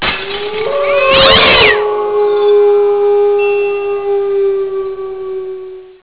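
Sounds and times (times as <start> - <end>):
wolf howling: 0.0 - 6.0
cat screeching: 0.3 - 1.8.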